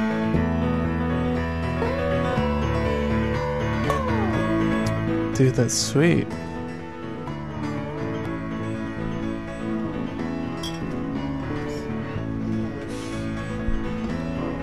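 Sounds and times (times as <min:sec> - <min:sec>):
dense sustained music: 0:00.0 - 0:14.6
speech: 0:05.4 - 0:06.5
glass beer bottles clinking together in a toast: 0:10.6 - 0:11.2.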